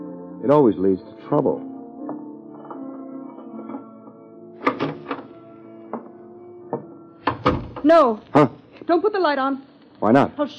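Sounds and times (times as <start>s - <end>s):
speech: 0.4s - 1.7s, 7.9s - 10.5s
back door of a building clunking open with knocks and rattles: 4.6s - 8.0s.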